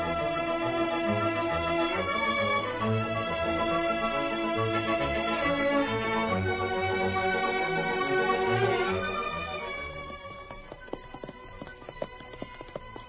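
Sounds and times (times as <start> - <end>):
music: 0.0 - 13.0
horse hooves trotting up a climbing trail with a rider: 6.5 - 13.0.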